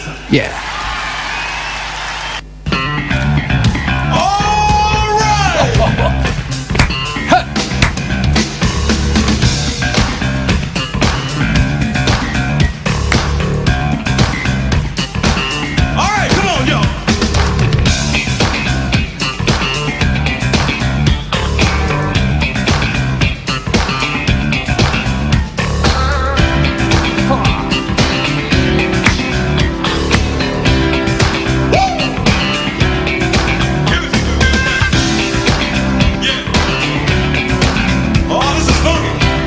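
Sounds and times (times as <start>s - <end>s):
shouted vocals and whoops: 0.2s - 2.4s, 4.0s - 6.1s, 31.7s - 32.2s
electric bass guitar in live band performance: 2.7s - 39.4s
loud live band performance: 2.7s - 39.4s
laughter: 5.0s - 7.6s, 25.9s - 28.3s.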